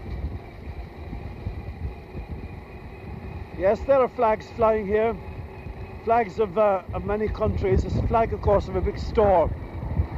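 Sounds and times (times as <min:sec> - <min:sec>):
very old car engine chugging: 0:00.0 - 0:10.1
speech: 0:03.6 - 0:05.3, 0:06.0 - 0:09.6.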